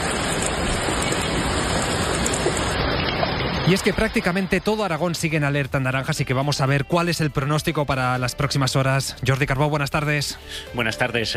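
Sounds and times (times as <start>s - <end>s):
heavy downpour of rain and hail: 0.0s - 5.0s
speech: 3.7s - 11.3s.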